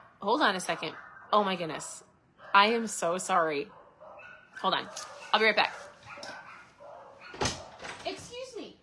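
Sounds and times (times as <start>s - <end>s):
household dogs barking: 0.0s - 2.9s, 3.5s - 8.0s
speech: 0.2s - 3.8s, 4.6s - 5.8s
thump: 7.3s - 8.0s.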